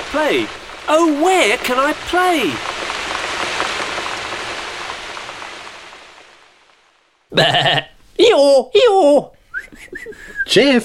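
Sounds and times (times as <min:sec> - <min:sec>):
steady hiss of rain: 0:00.0 - 0:10.8
speech: 0:00.1 - 0:02.7, 0:07.4 - 0:10.8
human voice imitating a sheep or goat bleating: 0:07.3 - 0:08.0.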